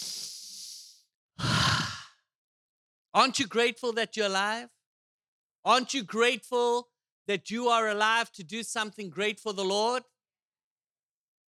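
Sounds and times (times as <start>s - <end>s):
deep breath in: 0.0s - 2.2s
speech: 3.2s - 4.8s, 5.6s - 10.1s.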